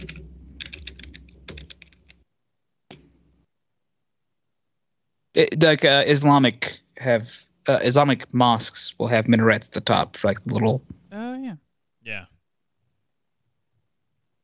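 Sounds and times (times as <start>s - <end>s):
typing on a computer keyboard: 0.0s - 2.2s
speech: 5.4s - 11.0s.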